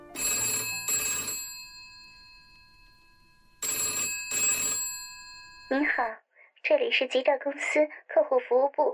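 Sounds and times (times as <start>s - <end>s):
old-style telephone bell ringing: 0.0s - 6.1s
speech: 5.7s - 8.9s.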